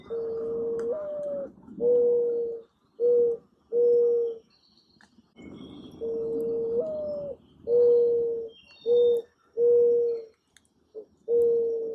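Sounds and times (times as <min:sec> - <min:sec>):
morning dove: 0:00.0 - 0:11.9.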